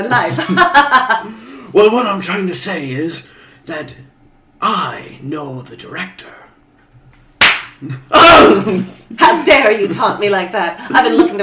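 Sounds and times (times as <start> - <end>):
speech: 0.0 - 6.4, 7.8 - 11.4
laughter: 0.2 - 1.4
loud sharp slap: 7.4 - 7.8
sharp smack: 7.4 - 7.8.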